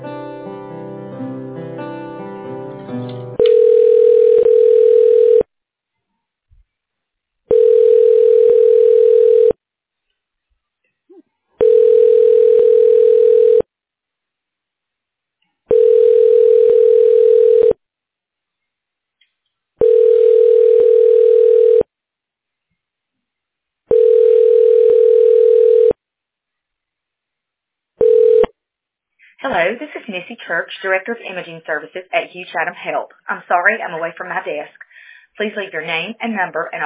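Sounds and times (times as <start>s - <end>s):
telephone line ringback tone while a call is transferred to voicemail: 3.4s - 5.5s, 7.5s - 9.6s, 11.6s - 13.7s, 15.7s - 17.8s, 19.8s - 21.9s, 23.9s - 26.0s, 28.0s - 28.5s
speech: 30.2s - 34.8s, 35.4s - 36.8s.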